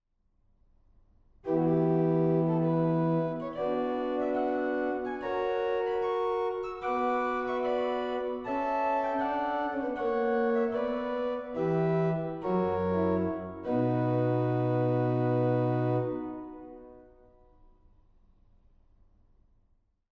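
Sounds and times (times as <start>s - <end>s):
organ Principal 8 stop: 1.5s - 16.9s.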